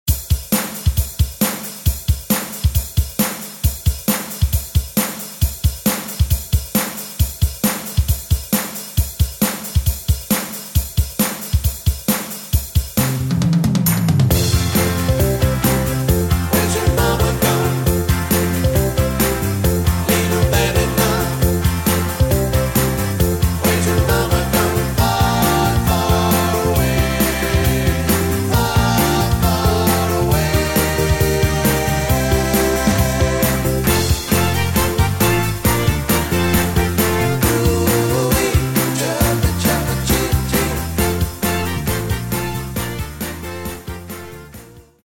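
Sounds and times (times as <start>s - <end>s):
backing track music: 0.1s - 45.0s.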